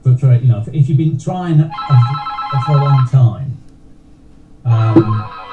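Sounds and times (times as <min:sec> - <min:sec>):
speech: 0:00.2 - 0:03.4
home telephone ringing with a bright warbling trill: 0:01.8 - 0:03.1
quiet low hum: 0:04.7 - 0:05.4.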